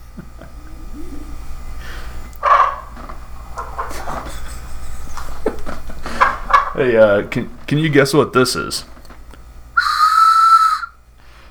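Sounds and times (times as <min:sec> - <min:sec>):
laughter: 0:00.0 - 0:01.6, 0:03.6 - 0:08.6
speech: 0:06.8 - 0:09.0
train whistle blast: 0:09.8 - 0:11.0.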